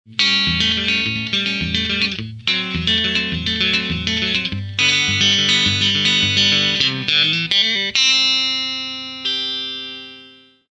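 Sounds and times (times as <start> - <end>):
clean electric guitar on middle pickup: 0.1 - 10.6.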